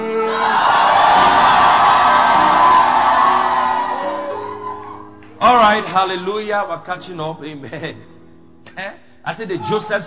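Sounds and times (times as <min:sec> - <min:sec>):
large crowd screaming together in a roar: 0:00.1 - 0:05.9
speech: 0:05.8 - 0:10.0.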